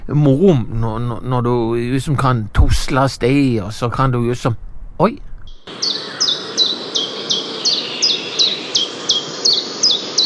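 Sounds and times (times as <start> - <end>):
speech: 0.1 - 6.2
common chiffchaff singing: 5.5 - 10.2.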